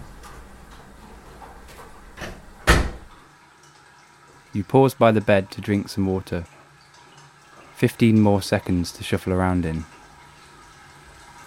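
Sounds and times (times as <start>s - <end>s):
door shutting on an upstairs landing at night: 0.0s - 3.2s
speech: 4.6s - 6.6s, 7.8s - 10.0s.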